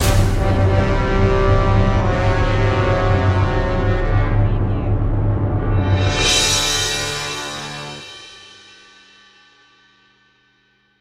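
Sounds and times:
orchestral music: 0:00.0 - 0:08.4.

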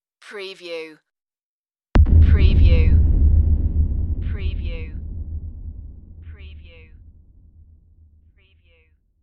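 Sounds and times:
deep bass hit: 0:02.0 - 0:08.3.

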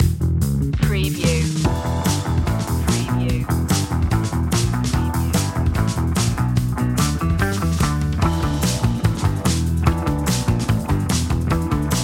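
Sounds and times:
cool upbeat music: 0:00.8 - 0:12.0.

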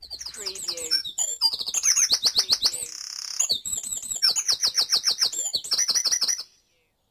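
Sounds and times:
birds in a dawn chorus in Mold, North Wales: 0:00.0 - 0:07.0.

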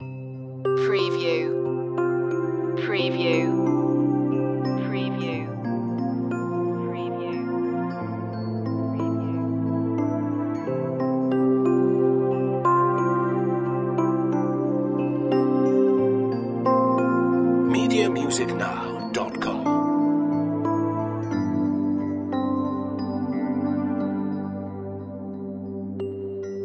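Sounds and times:
angelic healing music loop: 0:00.0 - 0:26.6.

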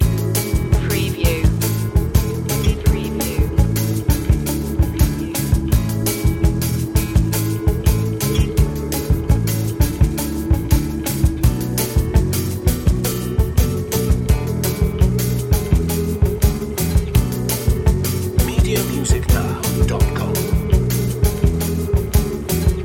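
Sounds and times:
emotional Brazil lounge music loop: 0:00.0 - 0:22.8.

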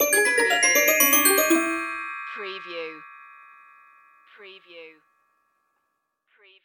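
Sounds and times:
pizzicato strings music: 0:00.0 - 0:02.4.

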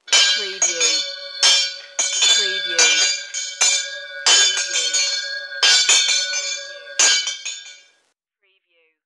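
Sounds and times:
antique school bell: 0:00.0 - 0:07.8.

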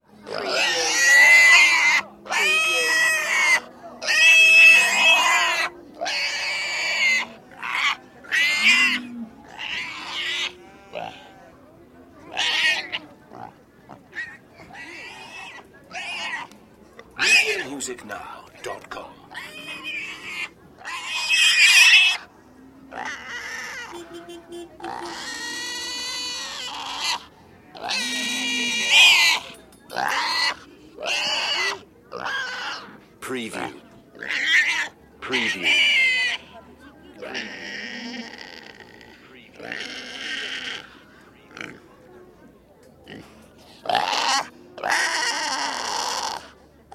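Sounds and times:
pig screaming: 0:00.3 - 0:11.4, 0:12.3 - 0:13.0, 0:14.1 - 0:16.5, 0:17.2 - 0:17.5, 0:19.3 - 0:22.3, 0:22.9 - 0:24.0, 0:24.8 - 0:32.9, 0:34.2 - 0:35.0, 0:35.7 - 0:36.5, 0:37.2 - 0:40.9, 0:43.9 - 0:46.9.

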